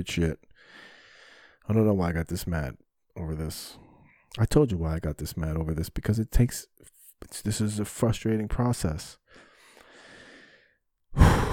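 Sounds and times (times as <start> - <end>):
speech: 0.0 - 0.9, 1.6 - 9.5
deep breath heard as loud rushing breathy exhale: 9.9 - 11.5.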